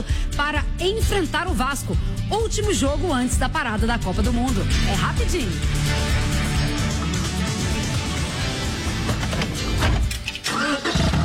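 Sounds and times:
speech: 0.8s - 6.4s
new car engine starting and idling: 6.9s - 11.2s.

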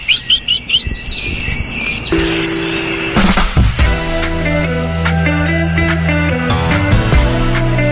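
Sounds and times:
bright repeated bird chirps: 0.0s - 3.8s
music with sustained tones and steady rhythm: 2.1s - 7.9s.

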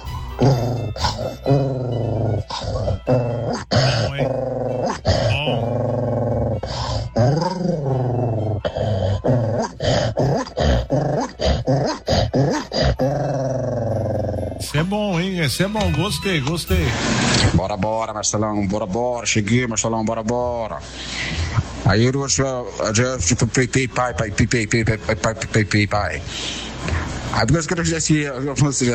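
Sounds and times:
speech: 0.4s - 5.7s, 14.8s - 21.3s, 21.9s - 26.7s, 27.3s - 28.9s
person imitating a dog barking and growling: 0.4s - 14.4s.

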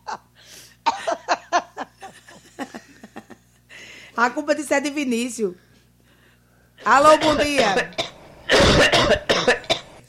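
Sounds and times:
harsh coughing fit: 0.9s - 1.3s, 6.8s - 10.0s
speech: 4.2s - 5.7s, 6.9s - 8.0s.

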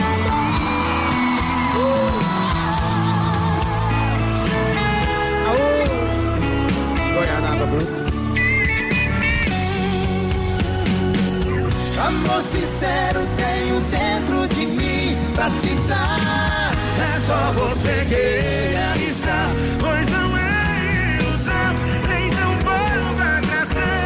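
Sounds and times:
concert crowd whoops: 0.0s - 4.2s
live concert crowd screaming and cheering: 0.0s - 6.6s, 8.0s - 24.0s
full band playing at a live concert: 0.0s - 24.0s.

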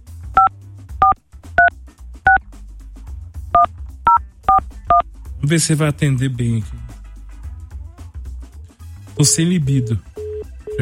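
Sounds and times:
touch-tone dialing of a toll-free number: 0.4s - 1.7s, 3.6s - 5.0s, 9.8s - 10.7s
speech: 5.0s - 6.8s, 9.2s - 10.1s.

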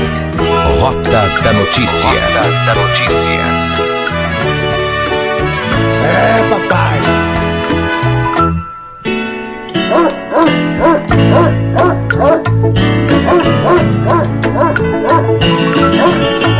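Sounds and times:
steady music with a strong bass line: 0.0s - 8.6s, 10.6s - 16.5s
speech: 0.9s - 3.8s, 6.1s - 7.1s, 9.9s - 16.5s
dog barking in short yipping bursts: 9.8s - 12.6s, 13.2s - 16.5s.

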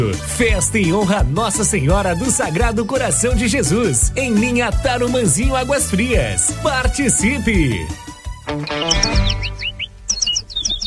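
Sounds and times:
speech: 0.0s - 9.6s
small bird singing bright high chirps and whistled notes: 8.6s - 10.8s.

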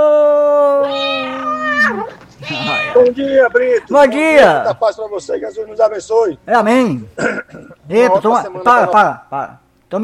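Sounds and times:
cat meowing: 0.8s - 3.1s
speech: 3.0s - 10.0s.

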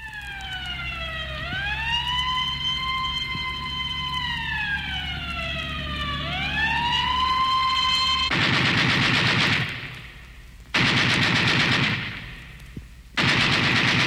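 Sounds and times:
wailing siren: 0.0s - 8.5s
machine gun fire: 8.3s - 10.2s, 10.8s - 12.6s, 13.2s - 14.0s.

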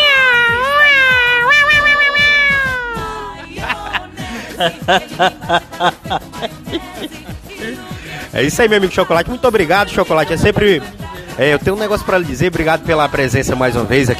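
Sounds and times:
person imitating kitten meows: 0.0s - 3.4s
laughter: 1.2s - 7.9s
speech: 4.6s - 14.1s.

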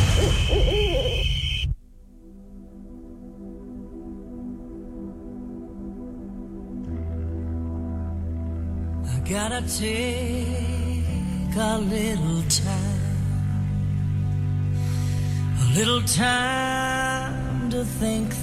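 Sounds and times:
owl hooting: 0.0s - 1.8s
steady low droning tone: 0.0s - 18.2s
speech: 9.3s - 10.8s, 11.6s - 13.0s, 15.8s - 18.4s.

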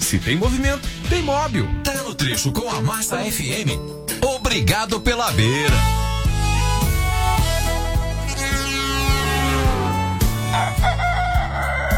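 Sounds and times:
steady busy music: 0.0s - 11.9s
speech: 0.1s - 6.0s
rooster crowing: 10.5s - 11.9s.

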